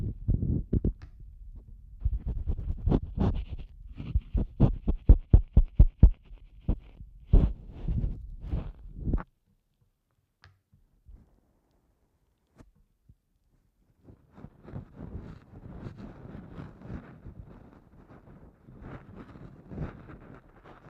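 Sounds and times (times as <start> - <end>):
soft steady rustling and scraping: 0.1 - 9.3, 11.0 - 20.8
ear cleaning scratching strokes: 2.1 - 9.2.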